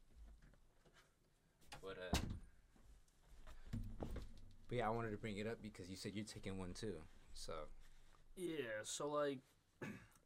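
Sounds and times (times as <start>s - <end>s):
speech: 1.8s - 2.4s, 4.7s - 10.1s
door shutting with a solid thud: 2.1s - 2.5s.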